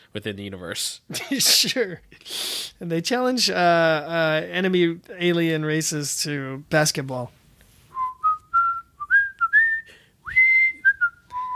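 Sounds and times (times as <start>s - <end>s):
speech: 0.1s - 7.4s
person whistling a short melodic tune: 7.9s - 11.5s.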